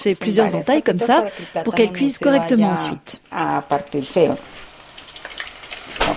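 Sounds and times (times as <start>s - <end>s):
speech: 0.0s - 4.6s
plantain sizzling and crackling in a hot frying pan: 1.3s - 6.1s.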